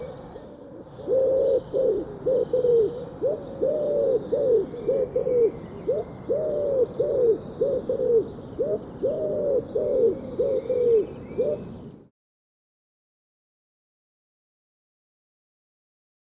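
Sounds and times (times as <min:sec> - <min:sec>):
bird giving low soft cooing hooting phrases: 0:00.0 - 0:12.0.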